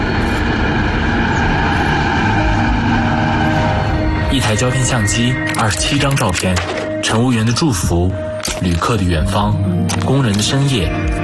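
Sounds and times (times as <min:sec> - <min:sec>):
train rushing past on the grassland at Damxung, Tibet: 0:00.0 - 0:06.1
speech: 0:04.5 - 0:11.2.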